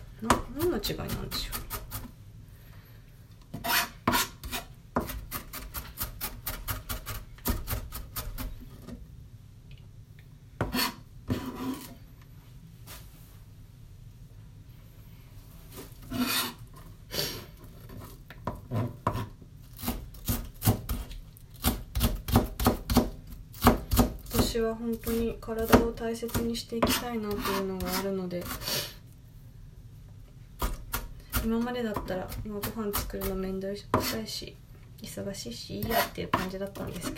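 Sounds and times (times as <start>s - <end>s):
speech: 0.2s - 1.6s, 24.6s - 28.7s, 31.5s - 37.1s
knife chopping an onion: 0.2s - 2.1s, 3.6s - 8.6s, 10.6s - 11.9s, 18.4s - 28.7s, 30.6s - 34.4s, 35.7s - 37.1s.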